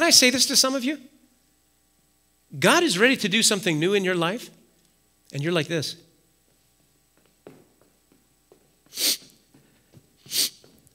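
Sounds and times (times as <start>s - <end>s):
speech: 0.1s - 1.1s, 2.5s - 4.6s, 5.3s - 6.0s, 8.9s - 9.2s, 10.3s - 10.5s
person sniffling while acting dejected: 8.9s - 9.4s, 10.2s - 10.7s.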